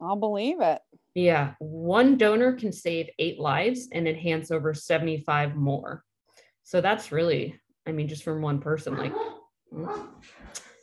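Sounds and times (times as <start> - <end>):
speech: 0.1 - 10.6
dog barking: 8.9 - 10.2.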